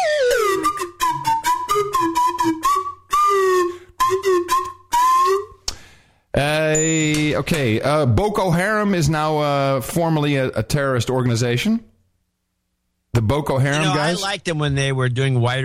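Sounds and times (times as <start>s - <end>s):
slide whistle: 0.0s - 5.6s
speech: 6.9s - 11.9s, 13.2s - 15.6s.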